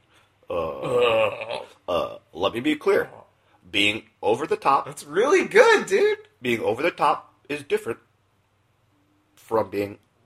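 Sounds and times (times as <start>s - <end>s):
long loud deep throaty burp as part of an impression: 0.4s - 2.3s
speech: 0.5s - 1.4s, 2.4s - 8.1s, 9.4s - 10.0s.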